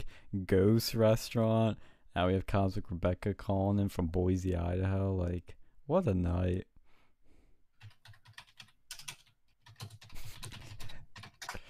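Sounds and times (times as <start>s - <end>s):
speech: 0.3s - 6.7s
fast typing on a computer keyboard: 7.8s - 11.6s.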